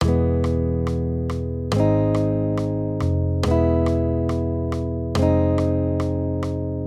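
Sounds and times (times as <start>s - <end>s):
accompaniment of major triads moving between E and A-flat: 0.0s - 6.8s.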